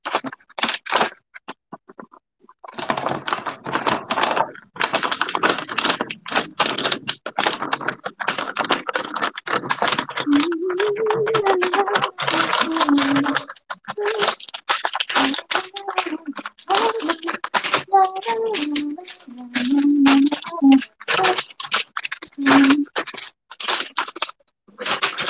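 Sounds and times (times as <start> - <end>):
paper bags crinkling and rustling while handled: 0.0 - 1.2, 2.7 - 25.2
faint murmuring: 9.0 - 14.4, 15.1 - 21.5, 22.3 - 23.1.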